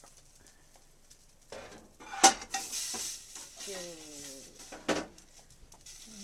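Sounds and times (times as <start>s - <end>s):
soft sizzling hiss: 0.0s - 6.2s
kitchen handling noises: 1.5s - 6.2s
spare ribs clattering and scraping into a metal cooking pot: 1.5s - 6.2s.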